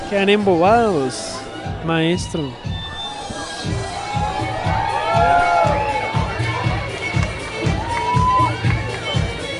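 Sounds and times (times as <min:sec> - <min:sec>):
speech: 0:00.1 - 0:02.7
audience shouting and cheering at a dance group performance: 0:00.7 - 0:09.5
high excited whoops from an audience: 0:02.8 - 0:06.6, 0:07.7 - 0:08.7.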